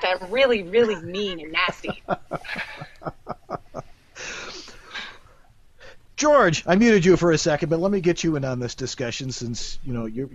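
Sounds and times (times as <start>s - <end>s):
speech: 0.0s - 2.9s, 6.2s - 10.3s
laughter: 0.0s - 4.4s
mouth breathing into a microphone: 4.1s - 6.0s.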